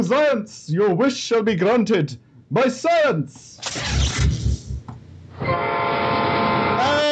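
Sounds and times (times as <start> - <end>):
speech: 0.0 - 4.1
train horn blaring: 5.4 - 7.0.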